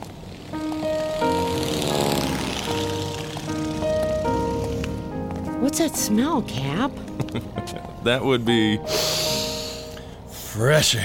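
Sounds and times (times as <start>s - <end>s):
Douglas DC-3 propeller airplane engines droning: 0.0s - 8.0s
speech: 5.7s - 9.4s, 10.6s - 11.0s.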